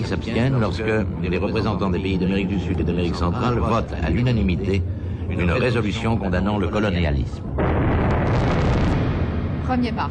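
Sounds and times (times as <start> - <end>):
speech: 0.1 - 8.1, 9.7 - 10.0
hydrogen bomb explosion rumbling roar: 7.6 - 10.0.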